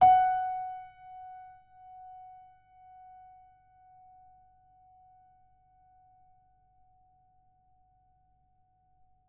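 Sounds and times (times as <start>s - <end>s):
piano note F sharp 5: 0.0s - 1.6s.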